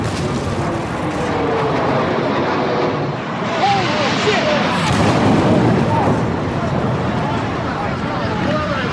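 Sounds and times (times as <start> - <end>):
airliner crashing into skyscraper tower: 0.0 - 8.4
airliner roaring: 0.0 - 8.9.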